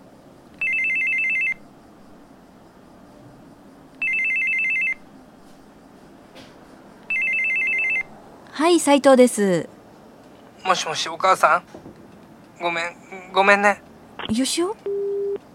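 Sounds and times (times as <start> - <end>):
quiet room noise: 0.0 - 15.5
telephone ringing with a bright warbling electronic tone: 0.6 - 1.6, 4.0 - 5.0, 7.1 - 8.1, 14.9 - 15.4
speech: 8.6 - 9.7, 10.7 - 12.0, 12.6 - 14.9.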